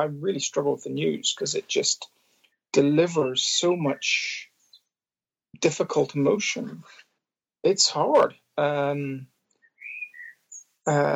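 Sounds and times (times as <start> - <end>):
speech: 0.0 - 4.5, 5.5 - 7.0, 7.6 - 9.3, 10.9 - 11.1
bird singing outside window: 9.6 - 10.8.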